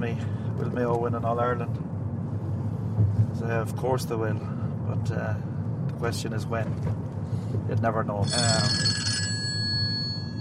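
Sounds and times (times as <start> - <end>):
speech: 0.0 - 1.9, 3.0 - 9.1
telephone ringing with a bright electronic tone: 8.2 - 10.3.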